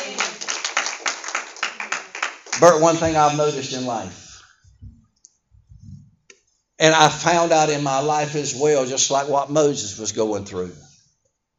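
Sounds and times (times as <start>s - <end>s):
audience clapping hands: 0.0s - 3.8s
speech: 2.6s - 4.2s, 6.8s - 10.9s.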